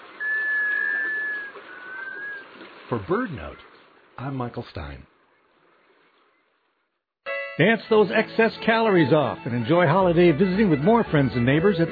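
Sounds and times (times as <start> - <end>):
sea duck giving a mysterious musical wailing call: 0.2 - 2.4
speech: 2.9 - 5.1, 7.6 - 11.8.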